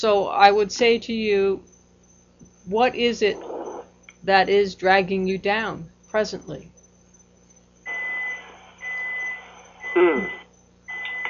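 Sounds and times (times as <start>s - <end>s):
speech: 0.0s - 1.7s, 2.7s - 3.5s, 4.2s - 6.7s, 10.0s - 10.4s
vehicle reversing beeps: 7.9s - 11.2s.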